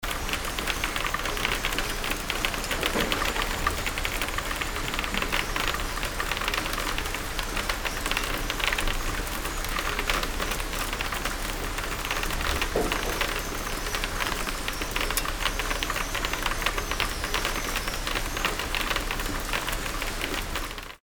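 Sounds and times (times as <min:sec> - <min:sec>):
conveyor belt running: 0:00.0 - 0:21.0.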